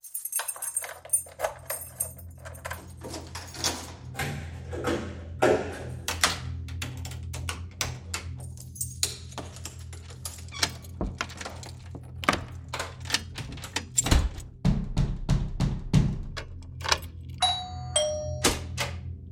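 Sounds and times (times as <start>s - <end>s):
door sound effects: 0.0s - 19.3s.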